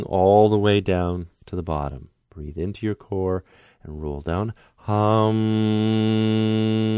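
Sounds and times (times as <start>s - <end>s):
speech: 0.0s - 6.9s
person humming a steady tone during a roll-down exercise: 5.0s - 6.9s.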